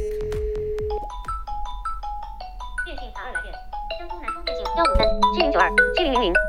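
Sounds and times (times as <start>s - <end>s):
Xiaomi mobile phone incoming-call ringtone melody: 0.1s - 6.4s.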